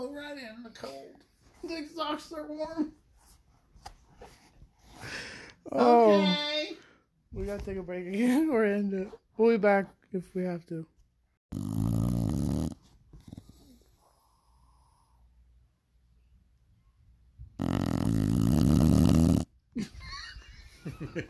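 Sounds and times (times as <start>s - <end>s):
speech: 0.6s - 3.0s, 5.0s - 10.9s
female dog snoring: 11.5s - 15.2s, 17.6s - 19.5s.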